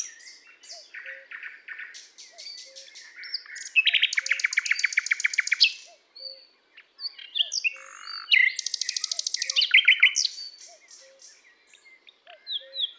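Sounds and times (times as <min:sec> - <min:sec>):
Common nightingale Luscinia megarhynchos rapid machine-gun rattle of repeated notes: 0:01.8 - 0:05.8, 0:07.9 - 0:11.4.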